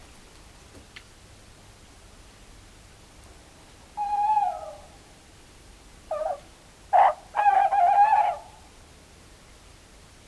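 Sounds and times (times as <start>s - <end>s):
soft hiss: 0.0s - 10.2s
tawny owl calling faintly: 4.0s - 5.1s, 6.1s - 8.7s.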